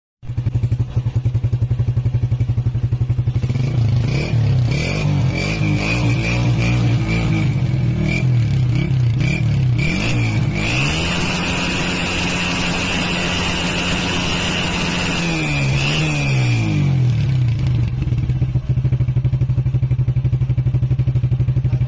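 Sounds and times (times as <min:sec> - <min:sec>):
vehicle exhaust: 0:00.3 - 0:21.8.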